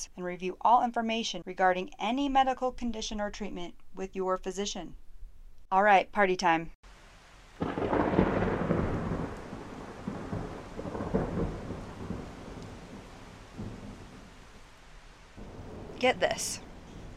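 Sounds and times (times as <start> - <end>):
speech: 0.0 - 5.0, 5.7 - 6.8, 16.0 - 16.7
steady wash of rain: 6.8 - 17.1
loud rolling thunder crash: 7.6 - 14.5, 15.3 - 17.1.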